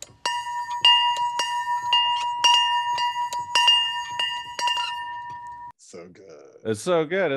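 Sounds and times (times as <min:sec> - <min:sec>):
small hand-cast bell ringing: 0:00.0 - 0:05.7
speech: 0:06.6 - 0:07.3.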